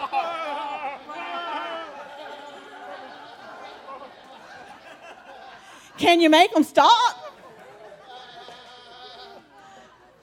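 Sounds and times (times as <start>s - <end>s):
crowd of people imitating sheep bleats: 0.0s - 3.9s, 7.9s - 9.9s
people chattering: 0.0s - 10.2s
people laughing: 0.0s - 10.2s
speech: 6.0s - 7.2s.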